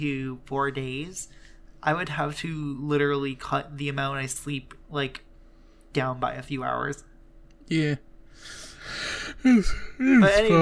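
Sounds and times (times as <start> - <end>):
speech: 0.0 - 5.3, 6.0 - 7.1, 7.7 - 10.6
person yawning: 9.1 - 10.2.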